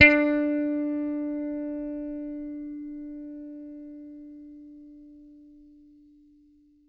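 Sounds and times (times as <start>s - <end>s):
plucked bass note D4: 0.0s - 5.1s.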